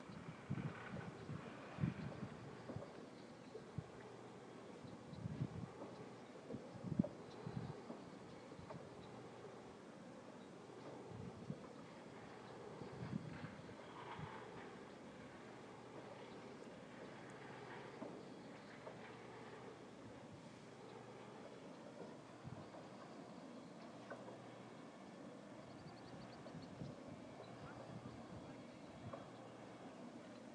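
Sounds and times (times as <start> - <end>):
wind turbine: 0.0 - 30.5.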